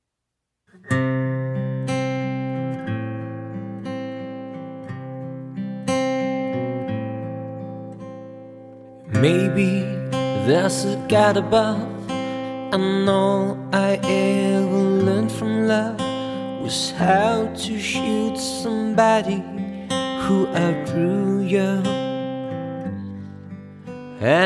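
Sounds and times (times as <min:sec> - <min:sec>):
guitar: 0:00.7 - 0:24.4
person singing songs with guitar: 0:09.1 - 0:22.1, 0:24.2 - 0:24.4.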